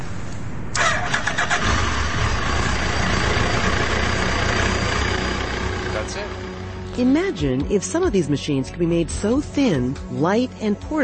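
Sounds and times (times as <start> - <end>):
motorbike engine cranking: 0.8 - 6.1
motorbike engine idling after starting: 0.8 - 7.7
speech: 7.0 - 11.0.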